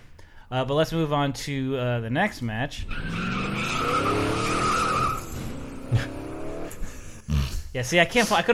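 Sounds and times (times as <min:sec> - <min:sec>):
speech: 0:00.5 - 0:04.0, 0:07.8 - 0:08.5
high-performance car tire skid: 0:02.8 - 0:07.2.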